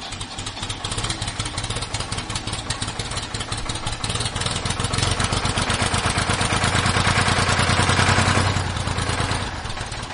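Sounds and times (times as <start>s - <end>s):
tractor engine starting and idling: 0.0s - 10.1s.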